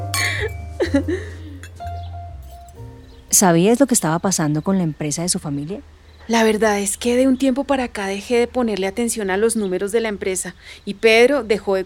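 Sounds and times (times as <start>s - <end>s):
glasses clinking together in a toast: 0.0s - 0.8s, 1.6s - 2.8s
speech: 0.9s - 1.4s, 3.3s - 11.8s.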